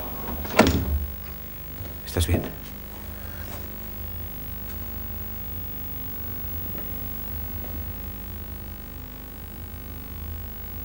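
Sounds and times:
door thud: 0.0s - 2.6s
low steady room hum: 0.0s - 10.8s
speech: 2.1s - 2.8s.

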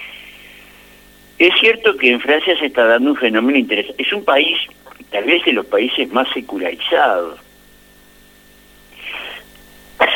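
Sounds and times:
speech: 1.4s - 7.4s
person coughing: 9.0s - 10.1s.

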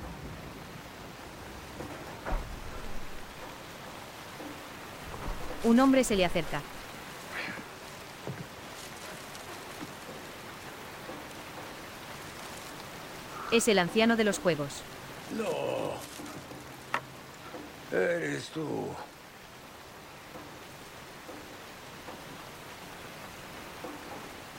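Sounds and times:
steady rain in an alley in front of a shop: 0.0s - 24.5s
speech: 5.6s - 6.7s, 13.5s - 16.1s, 17.9s - 19.1s.

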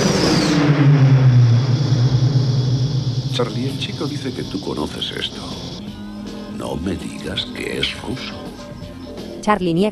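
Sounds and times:
high engine whine sweeping down: 0.0s - 7.6s
shuttle craft engine roaring overhead: 0.0s - 9.0s
speech: 3.4s - 5.7s, 6.6s - 8.4s, 9.5s - 9.8s.

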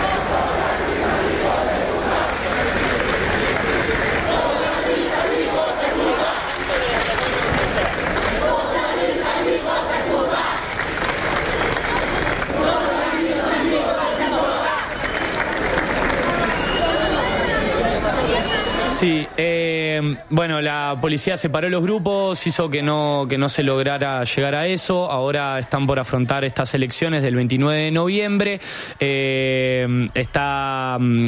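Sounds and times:
crowd chanting at a street protest in Spain: 0.0s - 22.8s
crowd babble: 0.0s - 28.6s
speech: 20.3s - 31.2s.

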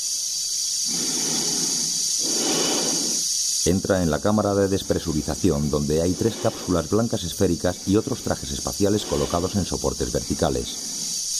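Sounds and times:
steady airy hiss: 0.0s - 11.3s
heavy breathing inside a spacesuit helmet: 0.9s - 3.2s, 4.7s - 11.2s
speech: 3.6s - 11.0s.

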